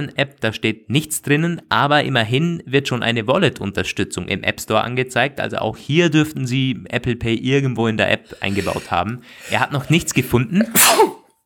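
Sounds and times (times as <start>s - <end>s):
speech: 0.0s - 11.2s
sneeze: 10.6s - 11.4s.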